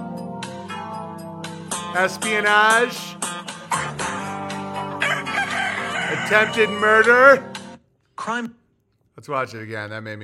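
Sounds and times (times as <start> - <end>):
speech: 2.0 - 3.2, 6.1 - 7.5, 8.2 - 8.6, 9.2 - 10.2
chickens clucking and squawking: 4.7 - 7.0
rooster crowing in a long strained call: 4.8 - 7.3.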